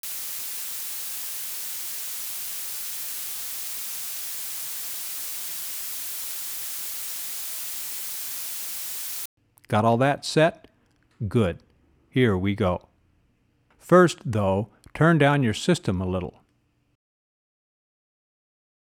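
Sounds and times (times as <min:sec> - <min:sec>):
pink noise played out of polarity through two speakers: 0:00.0 - 0:09.3
speech: 0:09.7 - 0:11.6, 0:12.2 - 0:12.9, 0:13.8 - 0:16.4.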